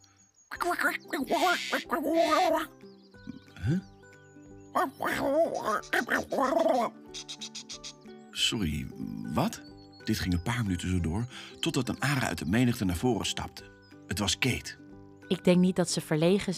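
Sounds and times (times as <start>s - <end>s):
speech: 0.5s - 2.8s, 3.6s - 3.9s, 4.7s - 7.5s, 8.4s - 16.5s
voice imitating a bird's twittering and chattering: 0.5s - 4.1s, 4.7s - 8.1s.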